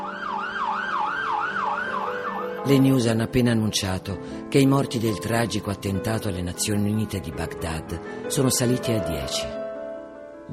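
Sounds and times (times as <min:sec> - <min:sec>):
distant siren wailing in rapid rising-and-falling sweeps: 0:00.0 - 0:02.7
speech: 0:02.6 - 0:09.6.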